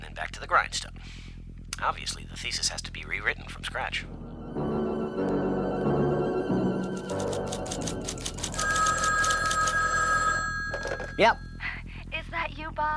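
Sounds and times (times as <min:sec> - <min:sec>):
speech: 0:00.6 - 0:01.2, 0:01.8 - 0:04.2, 0:11.2 - 0:11.5
low bed of music or room noise: 0:03.9 - 0:10.0
old-fashioned telephone bell ringing in rapid trills: 0:08.1 - 0:11.6.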